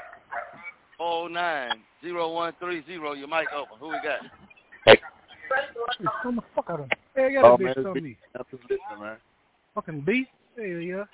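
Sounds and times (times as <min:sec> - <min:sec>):
dogs barking with whiny yelping barks over a phone line: 0:00.0 - 0:00.8, 0:03.4 - 0:05.4
speech: 0:01.0 - 0:11.1.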